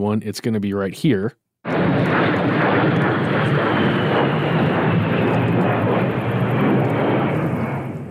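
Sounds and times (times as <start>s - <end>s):
speech: 0.0s - 3.6s
A-10 Warthog jet aircraft roaring overhead: 1.7s - 8.1s.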